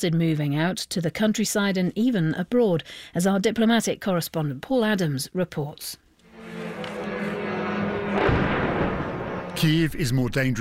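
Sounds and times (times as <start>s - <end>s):
speech: 0.0s - 6.0s, 9.6s - 10.5s
steady roar of noise: 6.3s - 10.5s
deep explosion booming: 8.1s - 10.1s.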